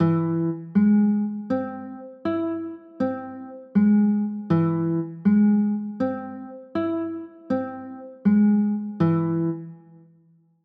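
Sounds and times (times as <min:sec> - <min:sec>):
A flat augmented chords: 0:00.0 - 0:10.0.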